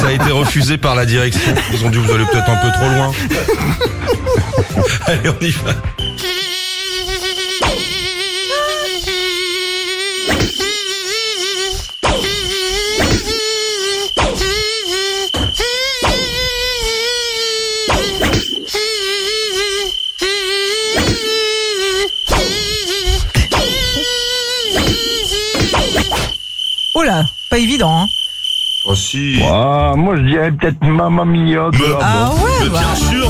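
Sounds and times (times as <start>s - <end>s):
laughter: 0.0s - 6.0s, 31.8s - 33.2s
speech: 0.1s - 6.4s, 29.2s - 33.2s
mosquito buzz playing a pop song melody in a studio: 5.8s - 28.9s.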